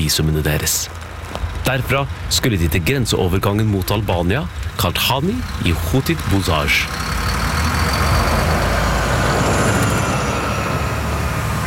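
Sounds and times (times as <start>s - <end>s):
bus engine drone in busy streets of Belgrade, Yugoslavia: 0.0s - 11.6s
road noise: 0.0s - 11.6s
speech: 0.1s - 7.2s
Yugo and Lada cars rushing past: 4.5s - 11.6s.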